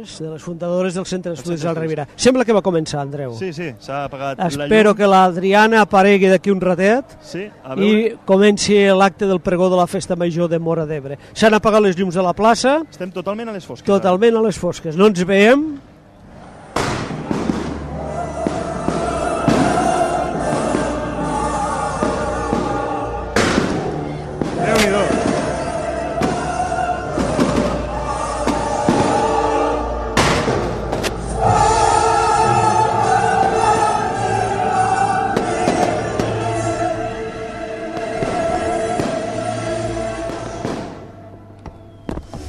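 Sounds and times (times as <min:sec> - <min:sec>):
speech: 0:00.0 - 0:15.9
crowd voices: 0:15.7 - 0:42.4
orchestral music: 0:16.5 - 0:41.6
fireworks display bursting overhead at a town festival: 0:16.6 - 0:29.5, 0:30.2 - 0:31.4, 0:35.3 - 0:36.7, 0:37.9 - 0:41.2.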